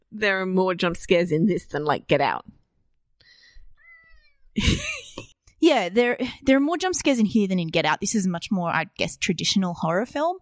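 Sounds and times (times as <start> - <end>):
speech: 0.2 - 2.6, 4.6 - 4.9, 5.6 - 10.4
domestic cat meowing: 3.8 - 4.6.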